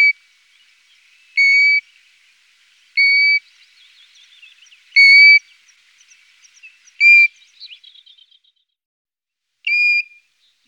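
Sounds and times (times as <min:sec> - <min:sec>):
golden plover whistle call: 0:01.3 - 0:01.9, 0:03.0 - 0:03.5, 0:04.9 - 0:05.4, 0:07.0 - 0:07.8, 0:09.7 - 0:10.2.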